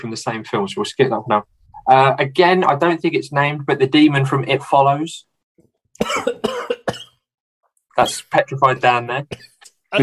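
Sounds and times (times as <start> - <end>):
speech: 0.0 - 5.3, 6.0 - 6.5, 8.0 - 10.0
man coughing: 6.0 - 7.2.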